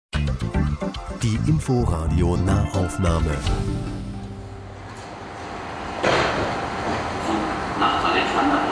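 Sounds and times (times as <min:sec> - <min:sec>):
speech: 0:01.2 - 0:04.0
U-Bahn train rumbling at a subway station: 0:03.2 - 0:08.7
low mechanical drone and hiss at a subway station: 0:03.4 - 0:08.7.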